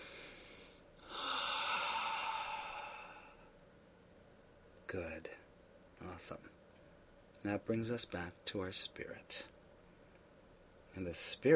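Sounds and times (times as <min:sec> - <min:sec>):
slow deep breath taken during a guided relaxation exercise: 0:00.0 - 0:03.6
speech: 0:04.9 - 0:06.5, 0:07.4 - 0:09.6, 0:11.0 - 0:11.5.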